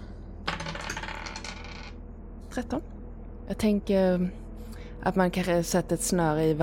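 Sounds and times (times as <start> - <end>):
dice rolled across a hard tabletop: 0.5 - 1.9
speech: 2.6 - 4.4, 5.0 - 6.6.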